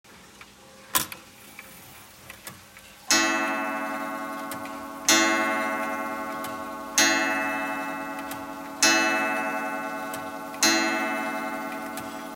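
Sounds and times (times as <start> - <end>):
red regulator clock: 3.1 - 12.3.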